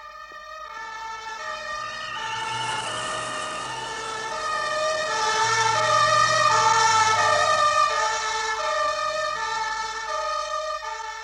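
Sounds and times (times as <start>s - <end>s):
ambulance siren wailing as the vehicle rushes past: 0.0s - 11.2s
ambulance low engine rumble: 1.4s - 8.5s.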